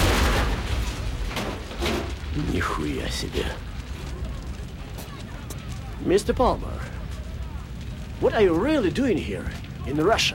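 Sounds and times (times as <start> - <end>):
truck laden with gas exploding into a fireball: 0.0 - 5.3
speech: 2.4 - 3.7, 6.0 - 7.0, 8.2 - 10.3.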